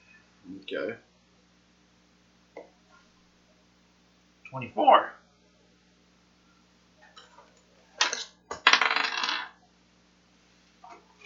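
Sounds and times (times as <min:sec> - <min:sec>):
speech: 0:00.7 - 0:01.1, 0:04.5 - 0:05.2
dice rolling across a hard tabletop: 0:08.0 - 0:09.6.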